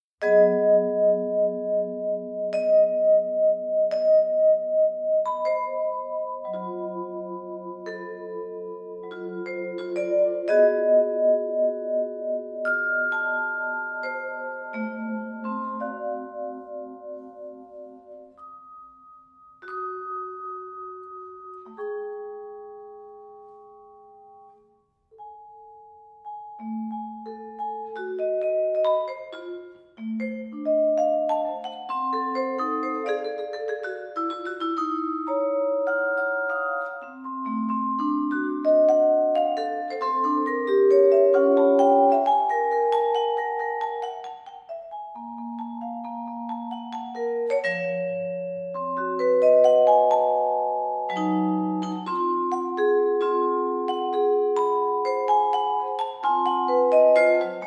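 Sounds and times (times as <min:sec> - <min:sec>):
vibraphone: 0:00.2 - 0:57.6.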